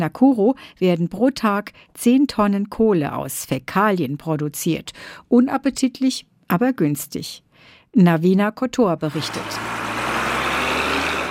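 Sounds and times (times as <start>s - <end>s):
speech: 0.0s - 9.8s
truck engine running delivering wastewater on the outskirts of Nakuru in Kenya: 9.1s - 11.2s.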